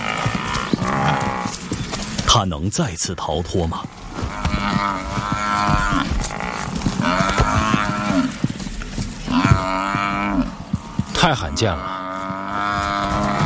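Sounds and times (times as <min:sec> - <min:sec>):
African buffalo bellowing: 0:00.0 - 0:01.6, 0:04.1 - 0:08.4, 0:09.2 - 0:13.4
rough rumbling background: 0:00.0 - 0:13.4
speech: 0:02.4 - 0:04.0, 0:04.6 - 0:06.4, 0:07.0 - 0:07.7, 0:11.2 - 0:12.0.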